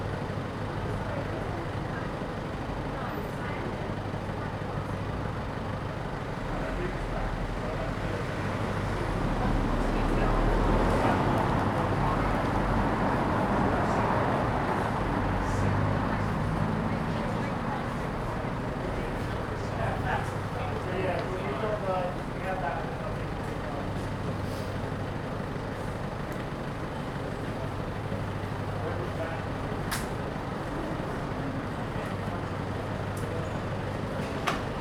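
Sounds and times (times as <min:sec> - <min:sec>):
passers-by murmuring: 0:00.0 - 0:34.8
traffic rumble on a narrow street: 0:00.0 - 0:34.8.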